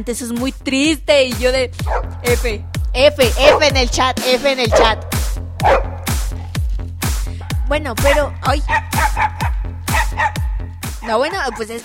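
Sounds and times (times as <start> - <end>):
speech: 0.0 - 5.9, 7.7 - 9.6, 11.1 - 11.8
neighbor's dog barking: 1.8 - 2.3, 3.3 - 3.9, 4.6 - 6.5, 8.0 - 11.8.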